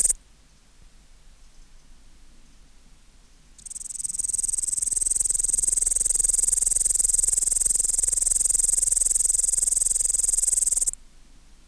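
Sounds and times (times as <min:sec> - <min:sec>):
upland green bush-cricket Tettigonia cantans buzzing trill: 0:03.6 - 0:11.0.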